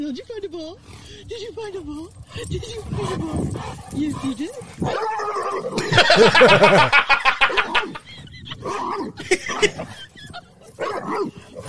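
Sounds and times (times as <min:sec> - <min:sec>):
speech: 0:00.0 - 0:10.4, 0:11.0 - 0:11.4
dog yipping and grumbling: 0:02.3 - 0:06.0, 0:07.4 - 0:11.6
laughter: 0:05.7 - 0:10.8.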